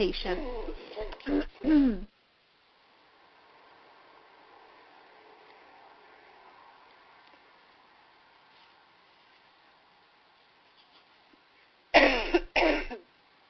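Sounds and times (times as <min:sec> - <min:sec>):
speech: 0:00.0 - 0:02.1
faint hum: 0:00.0 - 0:13.4
person coughing: 0:00.3 - 0:02.1, 0:12.0 - 0:13.0
throat clearing: 0:00.4 - 0:02.1.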